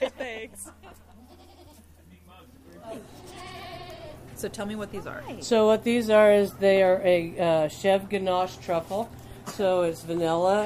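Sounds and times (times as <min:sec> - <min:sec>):
goats bleating: 0:01.1 - 0:02.0, 0:02.8 - 0:04.2
speech: 0:04.4 - 0:10.6.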